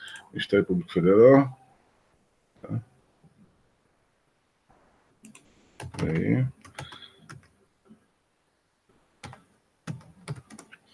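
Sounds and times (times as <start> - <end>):
speech: 0.3 - 1.6, 2.7 - 2.9, 5.8 - 6.6
typing on a computer keyboard: 5.2 - 7.5, 9.2 - 10.8.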